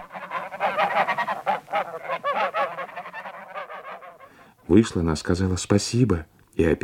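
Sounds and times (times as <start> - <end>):
flock of geese honking as they fly past: 0.0 - 4.6
speech: 4.7 - 6.8.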